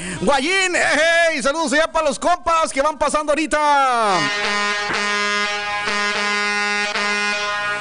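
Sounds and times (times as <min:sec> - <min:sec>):
speech: 0:00.2 - 0:05.1
car horn honking from passing vehicles along a roadside: 0:04.2 - 0:07.7.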